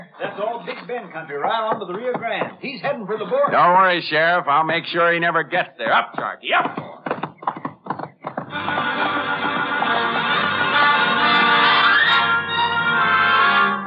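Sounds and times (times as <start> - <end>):
speech: 0.1 - 7.0
horse hooves clip-clopping: 0.3 - 12.3
horse whinnying: 8.4 - 13.8.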